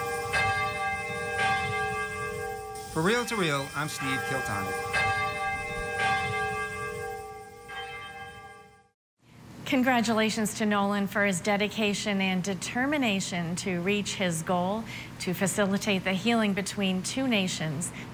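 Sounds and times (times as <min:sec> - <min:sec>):
large cathedral church bell ringing: 0:00.0 - 0:08.9
speech: 0:03.0 - 0:05.0, 0:09.7 - 0:18.1.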